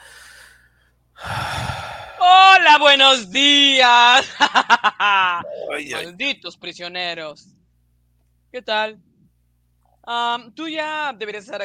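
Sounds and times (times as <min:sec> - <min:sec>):
deep breathing close to the microphone: 0:00.0 - 0:02.2, 0:05.4 - 0:06.0
speech: 0:02.6 - 0:07.6, 0:08.5 - 0:09.1, 0:10.1 - 0:11.6.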